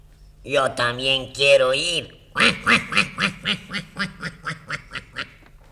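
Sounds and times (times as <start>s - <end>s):
speech: 0.4s - 4.8s
ducks quacking at a pond: 2.4s - 5.4s.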